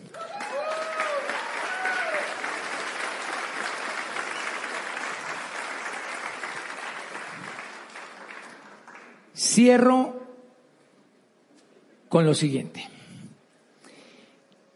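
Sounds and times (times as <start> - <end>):
people cheering: 0.0 - 9.1
sustained applause from a sizable audience: 0.0 - 9.3
speech: 9.5 - 10.2, 12.1 - 12.9.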